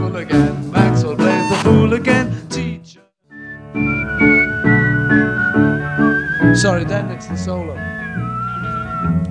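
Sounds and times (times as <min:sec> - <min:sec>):
speech: 0:00.2 - 0:00.6, 0:06.6 - 0:08.3
steady rhythmic instrumental backing: 0:00.2 - 0:02.4, 0:03.3 - 0:09.2
whistled melody: 0:01.2 - 0:02.2, 0:03.2 - 0:09.2.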